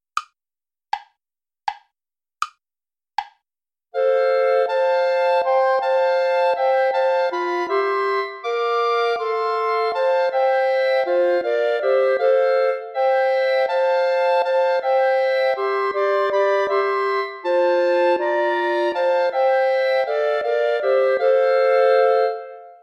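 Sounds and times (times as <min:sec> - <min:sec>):
play-along music without bass clarinet: 0:04.0 - 0:22.8.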